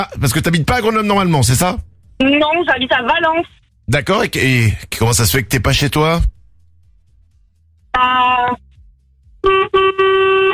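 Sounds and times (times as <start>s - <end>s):
speech: 0.0s - 6.3s, 8.0s - 8.6s
truck horn honking: 9.4s - 10.5s.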